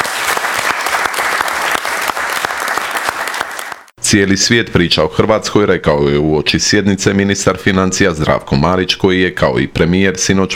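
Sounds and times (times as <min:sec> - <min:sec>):
government members clapping at a cabinet session: 0:00.0 - 0:04.0
speech: 0:04.1 - 0:10.5.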